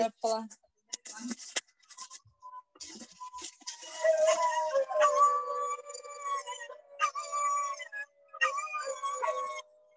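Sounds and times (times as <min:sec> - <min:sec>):
speech: 0:00.0 - 0:01.6
several dogs howling at night in Thailand: 0:04.0 - 0:09.9.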